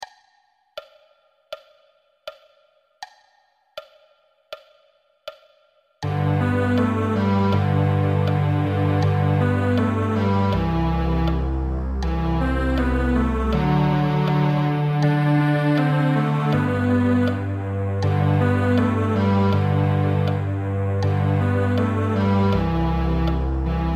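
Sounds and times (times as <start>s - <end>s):
cello duo playing a Christmas song: 6.0s - 23.9s.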